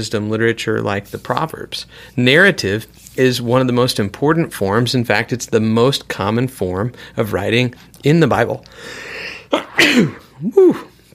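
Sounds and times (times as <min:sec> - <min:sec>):
speech: 0:00.0 - 0:10.9
loud sneeze with sharp inhaled buildup: 0:09.0 - 0:11.0.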